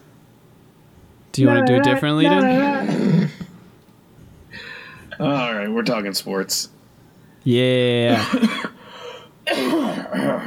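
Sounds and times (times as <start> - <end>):
speech: 1.4 - 3.2, 5.2 - 6.8, 7.4 - 8.7
harsh cough trailing into a throaty rasp: 8.1 - 10.4.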